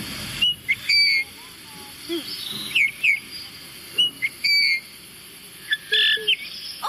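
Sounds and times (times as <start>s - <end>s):
Eurasian bullfinch giving soft piping whistled calls: 0.4s - 1.4s, 2.0s - 6.8s.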